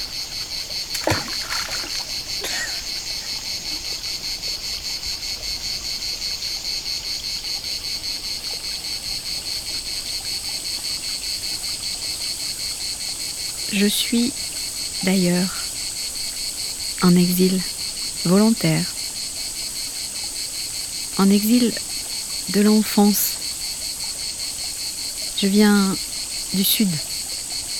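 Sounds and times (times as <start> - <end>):
cicada singing in a steady high pulsing drone: 0.0 - 27.7
brief knocks or splashes: 0.9 - 2.7
speech: 13.8 - 14.4, 15.0 - 15.6, 17.0 - 18.9, 21.2 - 21.9, 22.5 - 23.3, 25.4 - 27.1.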